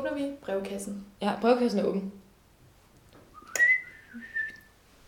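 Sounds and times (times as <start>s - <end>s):
speech: 0.2s - 2.2s
person whistling with the mouth: 3.3s - 4.7s.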